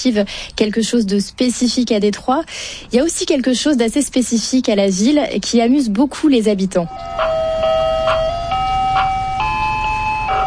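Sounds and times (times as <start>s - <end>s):
speech: 0.0s - 7.6s
light noise: 0.0s - 10.4s
ice cream truck jingle of sustained electronic tones: 6.9s - 10.4s.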